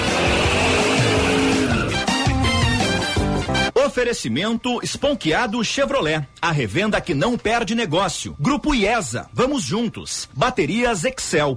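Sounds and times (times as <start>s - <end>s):
tires squealing and skidding: 0.0s - 2.3s
car engine revving: 0.0s - 2.6s
radio jingle built from car sounds: 3.7s - 11.5s
speech: 4.0s - 11.5s.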